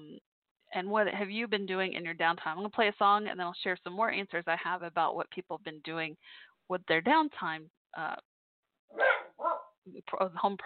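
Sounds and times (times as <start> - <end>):
speech: 0.8 - 8.3, 8.9 - 10.6
dog barking: 8.9 - 9.8.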